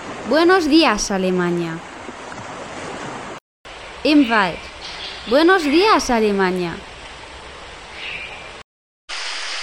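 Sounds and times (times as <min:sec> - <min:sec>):
ocean waves breaking on a beach: 0:00.0 - 0:08.6
flowing river water: 0:00.0 - 0:09.6
speech: 0:00.3 - 0:01.9, 0:04.0 - 0:06.9.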